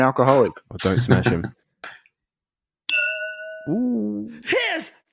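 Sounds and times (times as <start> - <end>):
speech: 0.0 - 2.0, 3.7 - 5.0
ridged tall tumbler clinking against a wine glass: 2.9 - 3.8
wine glass ringing tone: 2.9 - 4.1.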